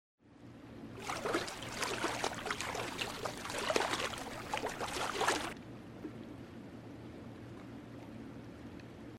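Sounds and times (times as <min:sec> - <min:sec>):
foot swishing in an empty pool: 0:01.0 - 0:05.6.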